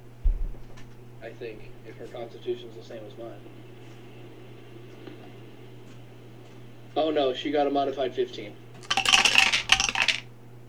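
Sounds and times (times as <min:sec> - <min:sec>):
speech: 0:01.2 - 0:03.7, 0:07.0 - 0:08.6
dice clattering down through a dice tower: 0:08.8 - 0:10.2.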